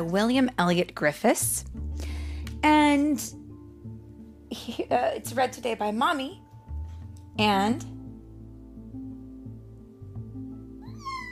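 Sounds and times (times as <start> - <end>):
speech: 0.0 - 3.4, 4.5 - 6.4, 7.4 - 8.0
child giving a high rising meow in imitation of a cat: 10.8 - 11.3.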